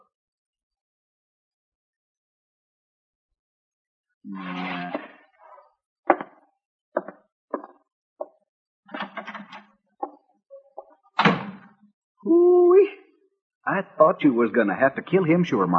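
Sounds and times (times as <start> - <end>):
speech: 4.2 - 5.0, 13.7 - 15.7
door creaking open with a drawn-out groan: 4.3 - 5.6, 8.9 - 11.7
door shutting with a firm thud: 11.2 - 11.7.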